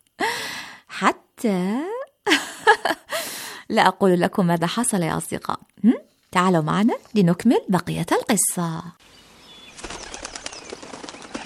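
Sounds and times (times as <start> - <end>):
speech: 1.0 - 1.9, 3.7 - 9.2
dove wings flapping: 9.7 - 11.4.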